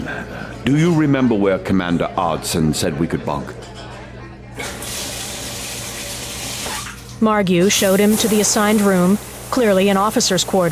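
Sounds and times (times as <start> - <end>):
speech: 0.1 - 3.8, 7.2 - 10.7
shower water running: 4.6 - 7.1, 7.7 - 10.7.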